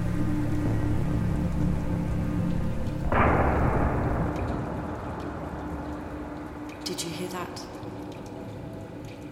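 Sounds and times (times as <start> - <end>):
heavy rain: 0.0 - 9.3
thunderclap from a storm overhead: 3.0 - 6.8.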